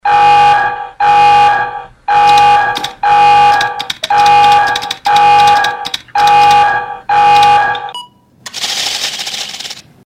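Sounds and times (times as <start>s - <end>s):
computer critical alert tones: 0.0s - 8.2s
computer keyboard typing: 2.2s - 9.9s.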